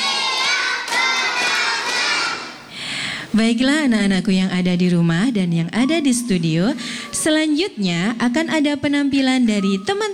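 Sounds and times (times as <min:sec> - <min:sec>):
group of children clapping hands in rhythm: 0:00.0 - 0:02.7
speech: 0:03.3 - 0:10.1.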